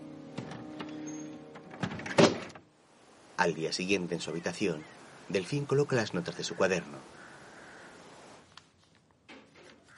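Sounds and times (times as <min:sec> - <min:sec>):
wooden shutters swung shut and latched from inside: 0:00.3 - 0:02.7
speech: 0:03.4 - 0:07.2.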